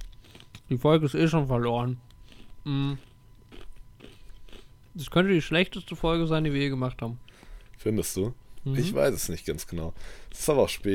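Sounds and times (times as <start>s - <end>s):
chewing biscuit: 0.0s - 0.8s, 2.0s - 4.9s
crisp crunchy bites into a biscuit: 0.0s - 0.8s, 1.8s - 5.0s
speech: 0.7s - 3.1s, 5.0s - 10.9s.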